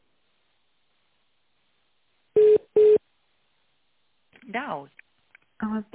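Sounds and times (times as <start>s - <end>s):
electronic telephone beeps as a call is transferred: 2.4s - 3.0s
speech: 4.5s - 5.0s, 5.6s - 5.9s.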